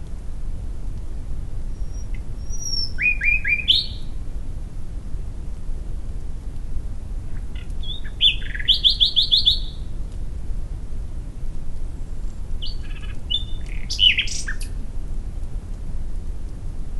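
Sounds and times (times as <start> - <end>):
low rumbling background noise: 0.0 - 16.9
common nightingale Luscinia megarhynchos singing liquid notes and trills: 1.7 - 4.2, 7.3 - 10.0, 12.0 - 14.8.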